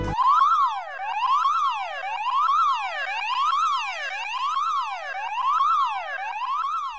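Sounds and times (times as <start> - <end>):
electronic alarm siren wailing: 0.1 - 6.9.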